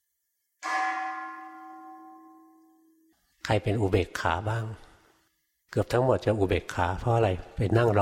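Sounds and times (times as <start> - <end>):
single bell struck once and ringing: 0.6 - 3.0
speech: 3.5 - 4.9, 5.7 - 8.0.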